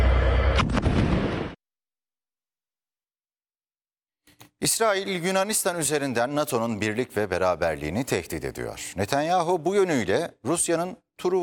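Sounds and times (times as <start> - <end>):
air strike explosions from bunker-buster missiles: 0.0 - 1.6
deep continuous rumble: 0.0 - 1.6
speech: 4.6 - 11.4.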